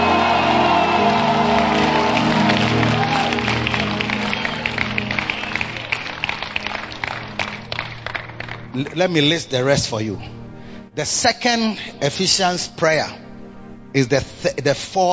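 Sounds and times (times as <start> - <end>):
audience shouting: 0.0 - 4.9
audience clapping: 0.0 - 8.7
speech: 8.8 - 10.4, 11.0 - 13.2, 13.9 - 15.1.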